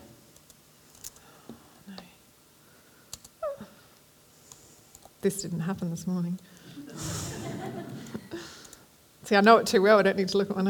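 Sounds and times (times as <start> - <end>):
low hiss: 0.0 - 10.6
typing on a computer keyboard: 3.1 - 3.3
speech: 5.2 - 7.1, 9.3 - 10.6
laughter: 6.8 - 8.4.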